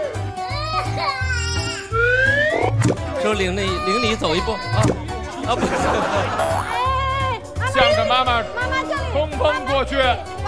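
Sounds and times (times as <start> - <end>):
small child crying at a children's hurdle race: 0.3 - 2.2, 3.6 - 4.8
speech: 3.2 - 6.6, 7.8 - 10.4
laughter: 5.0 - 7.4.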